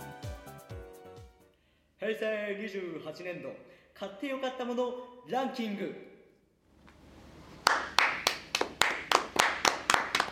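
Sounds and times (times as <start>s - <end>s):
speech: 2.0s - 6.1s
sparse dry hand clapping from three people: 7.6s - 10.3s.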